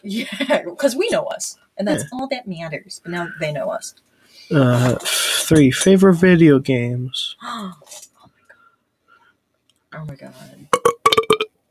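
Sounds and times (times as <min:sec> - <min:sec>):
speech: 0:00.0 - 0:08.0, 0:10.0 - 0:10.8
long low gurgling burp into a brand new microphone: 0:10.8 - 0:11.5.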